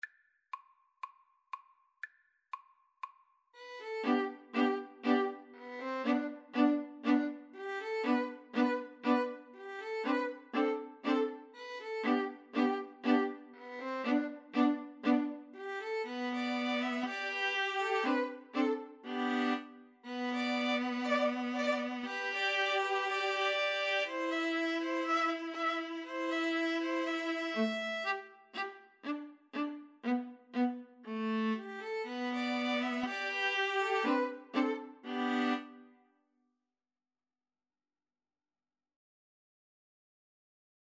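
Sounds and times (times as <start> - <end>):
string trio playing a folk tune: 3.8 - 35.8.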